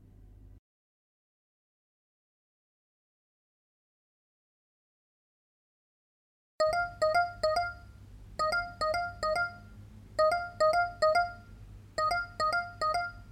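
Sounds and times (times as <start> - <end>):
low steady hum: 0.0 - 0.6, 6.6 - 13.3
phone ringing with a bright electronic ringtone: 6.6 - 13.3.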